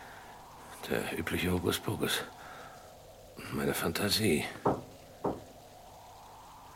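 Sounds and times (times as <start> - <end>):
speech: 0.8 - 2.5, 3.4 - 4.9
mysterious dull knocks: 4.6 - 5.5.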